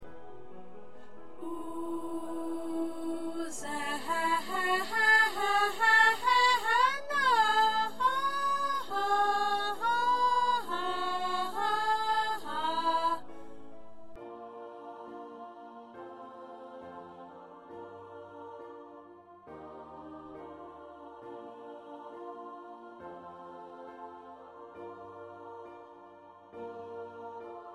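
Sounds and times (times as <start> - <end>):
soprano ensemble singing: 0.0 - 27.7.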